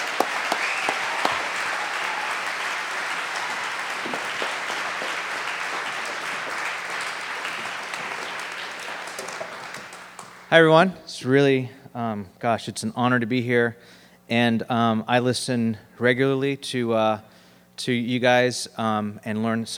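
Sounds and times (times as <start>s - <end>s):
audience applause in a church: 0.0s - 10.5s
speech: 10.5s - 19.7s.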